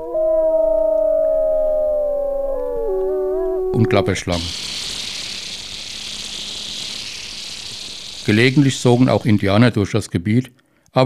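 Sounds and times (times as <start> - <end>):
wolves howling: 0.0 - 4.5
speech: 3.7 - 4.9, 8.3 - 11.0.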